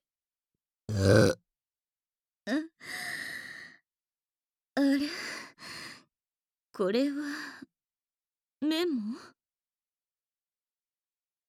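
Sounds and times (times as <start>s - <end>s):
loud belch: 0.9s - 1.3s
speech: 6.8s - 7.6s, 8.7s - 9.3s.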